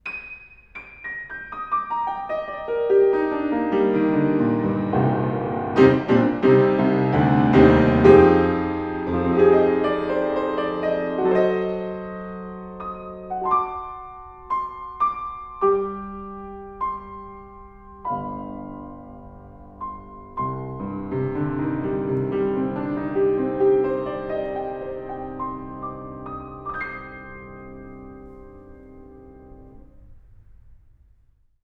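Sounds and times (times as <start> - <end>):
piano with front half open: 0.0 - 31.6.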